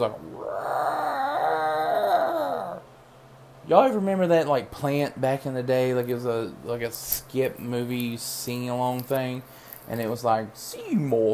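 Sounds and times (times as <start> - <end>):
speech: 0.0 - 0.4, 3.7 - 11.3
pastor imitating an animal growling like a gorilla: 0.0 - 2.8.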